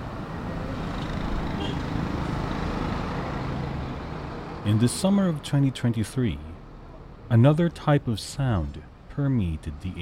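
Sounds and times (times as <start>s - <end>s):
road traffic of cars and heavier vehicles passing a ship memorial: 0.0s - 10.0s
speech: 4.7s - 6.5s, 7.3s - 10.0s.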